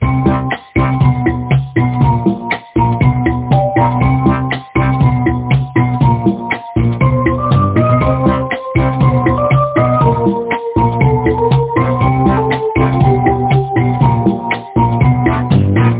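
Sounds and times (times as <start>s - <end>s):
1970s style action music: 0.0s - 15.9s.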